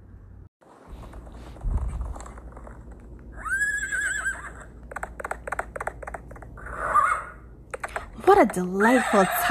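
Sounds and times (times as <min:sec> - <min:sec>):
horse neighing: 0:03.4 - 0:04.7, 0:06.6 - 0:07.4
speech: 0:08.3 - 0:09.5.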